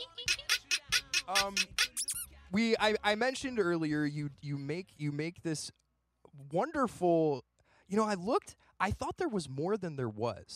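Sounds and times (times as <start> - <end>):
comical squeaky sound effect for a shaking bottom: 0.0 - 2.4
rising chirps: 0.4 - 2.3
speech: 1.3 - 1.8, 2.5 - 5.8, 6.4 - 10.5.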